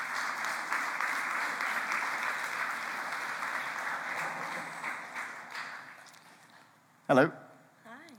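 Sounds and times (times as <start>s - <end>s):
crowd applause: 0.0s - 6.1s
speech: 7.1s - 7.4s.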